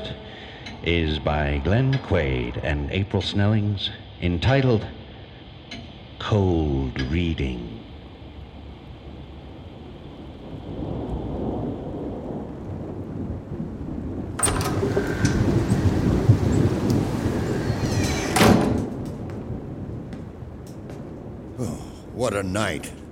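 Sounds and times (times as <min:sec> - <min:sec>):
heavy rain during a thunderstorm: 0:00.0 - 0:23.0
speech: 0:00.8 - 0:05.0, 0:06.2 - 0:07.8, 0:22.5 - 0:23.0
thunderclap: 0:07.8 - 0:23.0.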